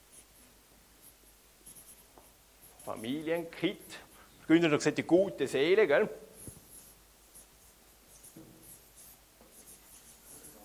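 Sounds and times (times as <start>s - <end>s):
pen scratching across paper: 0.1s - 0.4s, 1.0s - 4.2s, 6.4s - 10.6s
speech: 2.9s - 6.2s.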